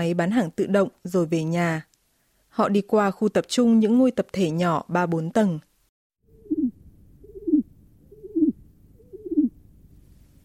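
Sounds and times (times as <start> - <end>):
speech: 0.0 - 1.9, 2.6 - 5.7
pigeon cooing: 6.3 - 9.6.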